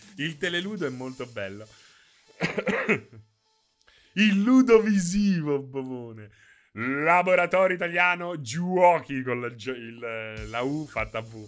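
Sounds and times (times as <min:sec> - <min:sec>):
speech: 0:00.2 - 0:01.8, 0:02.5 - 0:03.3, 0:04.2 - 0:11.4
throaty coughing: 0:02.4 - 0:03.2.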